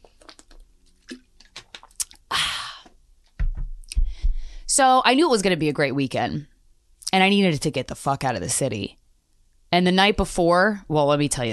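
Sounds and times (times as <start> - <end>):
person drinking water with swallows and gulps: 0.0 - 3.0
speech: 4.8 - 6.5, 7.1 - 9.0, 9.7 - 11.5.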